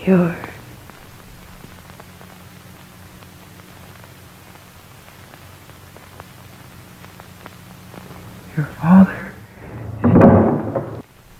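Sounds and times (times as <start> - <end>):
constant tape-like hiss of an old worn film: 0.0 - 11.3
steady low electrical hum of an old worn film: 0.0 - 11.3
voices: 8.0 - 11.0.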